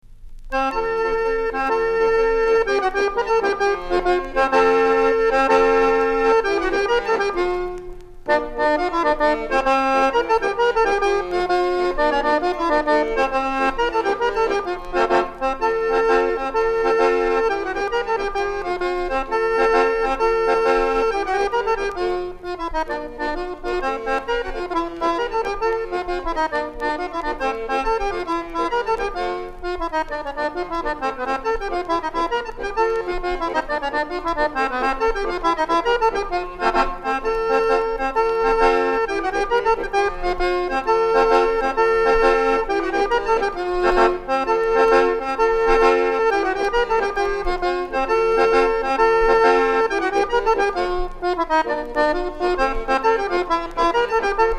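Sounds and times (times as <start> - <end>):
monferrina folk dance music: 0.0 - 54.5.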